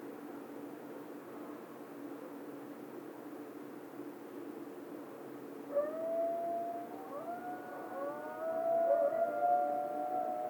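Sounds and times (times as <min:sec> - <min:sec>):
coyote howling: 0:05.7 - 0:10.4.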